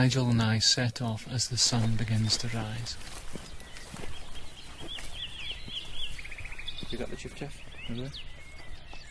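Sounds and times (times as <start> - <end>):
speech: 0.0 - 3.4, 6.9 - 8.4
wren singing at dawn: 0.0 - 9.0.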